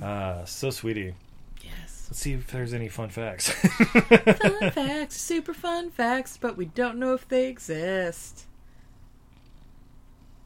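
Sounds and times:
speech: 0:00.0 - 0:01.3, 0:02.1 - 0:08.5
cat purring: 0:00.0 - 0:02.8, 0:08.2 - 0:10.4
laughter: 0:03.4 - 0:05.1.

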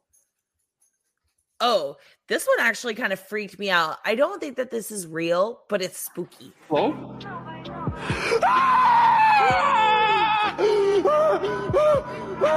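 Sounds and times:
speech: 0:01.6 - 0:09.8
man screaming in a church: 0:08.2 - 0:12.5.

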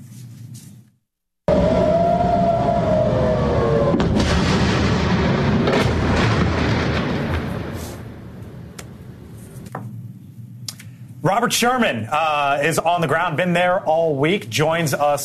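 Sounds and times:
air raid siren wailing in Tel Aviv: 0:01.5 - 0:07.0
rumbling roar of rocket interceptions over Tel Aviv: 0:01.5 - 0:08.4
sharp booms of rocket interceptions: 0:02.4 - 0:09.4
speech: 0:11.4 - 0:15.2.

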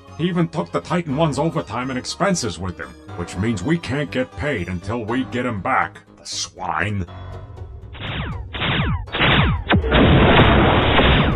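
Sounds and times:
speech: 0:00.2 - 0:07.5
heavy booming blasts of warships firing on a ship: 0:08.0 - 0:11.3.

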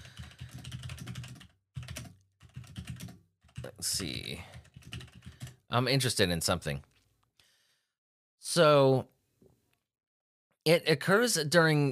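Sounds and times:
rapid typing on a computer keyboard: 0:00.0 - 0:03.8, 0:04.5 - 0:05.6
speech: 0:03.6 - 0:04.6, 0:05.7 - 0:06.9, 0:08.4 - 0:09.1, 0:10.6 - 0:11.9.

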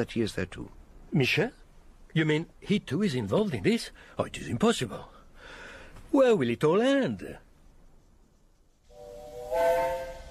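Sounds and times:
speech: 0:00.0 - 0:05.2, 0:06.1 - 0:07.4
steam locomotive getting up steam sounding its whistle: 0:08.9 - 0:10.3.

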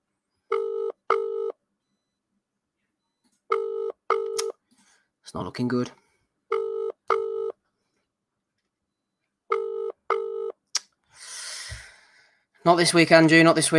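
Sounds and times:
telephone dial tone on the line: 0:00.5 - 0:01.6, 0:03.5 - 0:04.4, 0:06.5 - 0:07.6, 0:09.5 - 0:10.6
speech: 0:05.3 - 0:06.0, 0:12.7 - 0:13.7.

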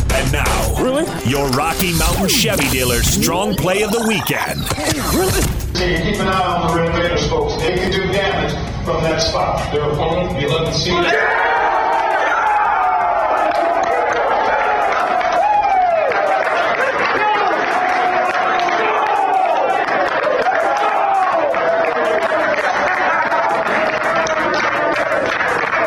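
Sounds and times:
speech: 0:00.8 - 0:11.4
excited chatter: 0:01.2 - 0:05.5, 0:11.0 - 0:25.8
team players clapping and cheering: 0:11.1 - 0:25.8.

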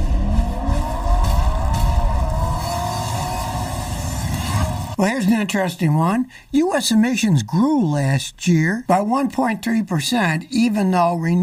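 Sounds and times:
car engine revving: 0:00.0 - 0:05.0
speech: 0:05.0 - 0:11.4.

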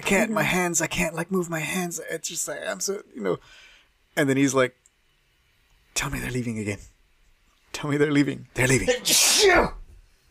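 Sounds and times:
speech: 0:00.1 - 0:04.8, 0:06.0 - 0:06.9, 0:07.7 - 0:09.8
single loud sneeze: 0:09.0 - 0:09.8.

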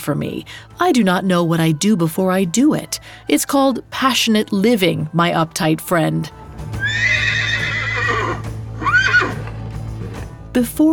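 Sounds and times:
speech: 0:00.0 - 0:07.4, 0:10.6 - 0:10.9
horse neighing as a centaur rearing up and bellowing: 0:06.8 - 0:09.6.

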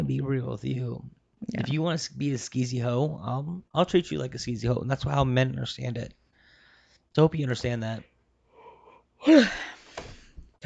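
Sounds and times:
speech: 0:00.0 - 0:06.2, 0:07.2 - 0:08.1, 0:09.2 - 0:10.6
person yawning: 0:08.6 - 0:09.9.

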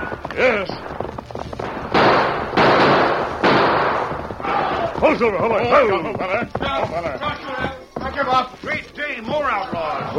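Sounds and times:
gunshots during a stagecoach holdup by outlaws: 0:00.8 - 0:05.1
speech: 0:05.1 - 0:07.6, 0:08.2 - 0:10.1.

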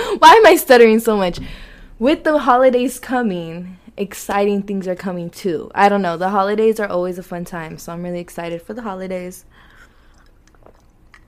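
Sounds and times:
speech: 0:00.2 - 0:09.6
person sipping ice cold water from a mug: 0:09.4 - 0:11.2
slurping and swallowing: 0:09.6 - 0:11.2.

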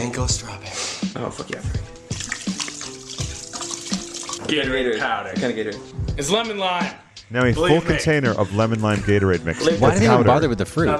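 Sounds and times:
speech: 0:00.1 - 0:02.1, 0:04.5 - 0:10.9
liquid pouring from a full bottle of wine: 0:02.1 - 0:04.5.

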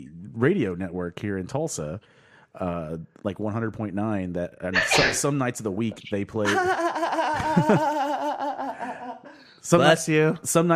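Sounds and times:
speech: 0:00.0 - 0:08.0, 0:09.6 - 0:10.7
sneeze: 0:04.8 - 0:05.3
laughter: 0:06.4 - 0:09.4.

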